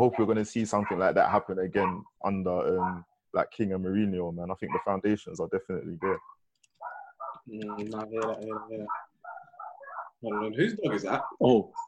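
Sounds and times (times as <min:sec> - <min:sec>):
dog barking and yelping: 0:00.0 - 0:01.2, 0:01.8 - 0:02.1, 0:02.7 - 0:03.1, 0:04.6 - 0:05.0, 0:06.0 - 0:11.8
speech: 0:00.0 - 0:06.4, 0:07.4 - 0:09.0, 0:10.2 - 0:11.8.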